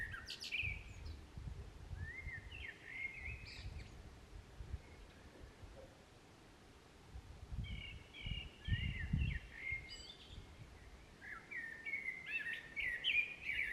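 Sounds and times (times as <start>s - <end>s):
common blackbird singing in a park: 0.0s - 1.2s, 2.0s - 4.0s, 7.6s - 13.7s.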